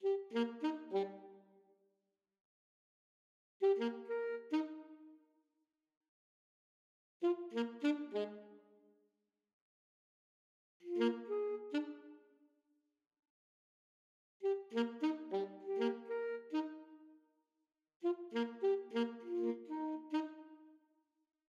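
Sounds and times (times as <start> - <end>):
alto saxophone duet playing a folk tune: 0.0 - 1.4, 3.6 - 5.1, 7.2 - 8.5, 10.8 - 12.1, 14.4 - 17.0, 18.0 - 20.6.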